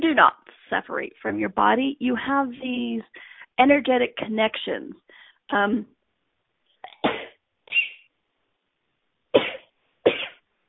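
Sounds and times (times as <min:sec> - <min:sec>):
speech: 0:00.0 - 0:06.0
sharp explosive sneezes: 0:06.9 - 0:08.1.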